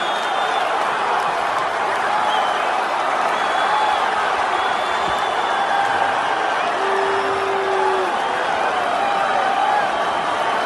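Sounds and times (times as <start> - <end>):
whistles from arena crowd: 0.0 - 0.8, 2.1 - 6.9, 9.7 - 10.6
large arena crowd at a cage fight roaring: 0.0 - 10.6
scattered yells of arena crowd: 0.0 - 10.6.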